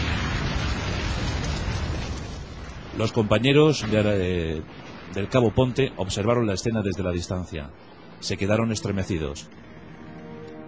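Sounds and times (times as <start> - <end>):
magnetic mine exploding against the tracks of a T-34 tank: 0.0 - 5.4
speech: 3.0 - 9.7.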